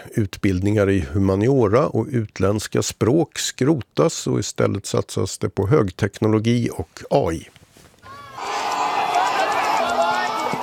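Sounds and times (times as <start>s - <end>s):
speech: 0.1s - 7.6s
students shouting excitedly: 8.0s - 10.6s
students running footsteps out of exam hall: 8.4s - 10.6s.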